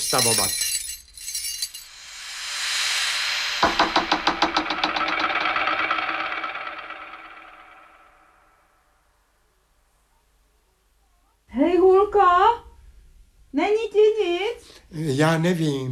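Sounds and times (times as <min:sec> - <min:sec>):
speech: 0:00.0 - 0:00.7, 0:15.0 - 0:15.9
thrown keys striking a door lock: 0:00.0 - 0:01.8
steady hiss: 0:00.0 - 0:15.9.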